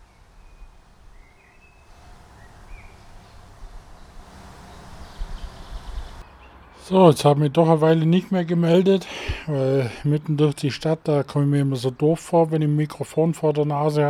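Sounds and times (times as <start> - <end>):
faint high bird chirps: 0.0 - 6.9
traffic rumble: 0.0 - 14.0
speech: 6.9 - 14.0.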